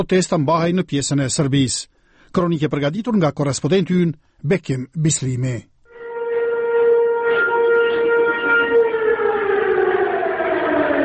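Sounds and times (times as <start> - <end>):
speech: 0.0 - 5.7
alarm sirens in northern Kosovo calling Serb citizens to protest: 5.9 - 11.0.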